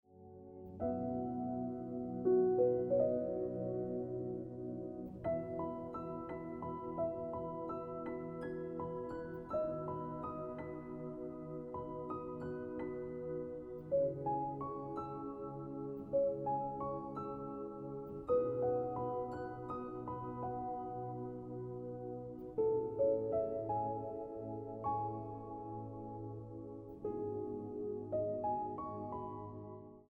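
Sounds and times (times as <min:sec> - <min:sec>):
piano ringtone music: 0:00.3 - 0:29.8.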